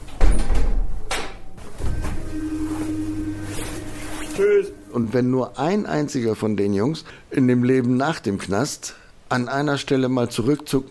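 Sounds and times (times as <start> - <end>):
automatic door mechanical clunks: 0.0 - 2.3
automatic door motor humming while sliding open: 1.7 - 4.0
speech: 4.4 - 10.9.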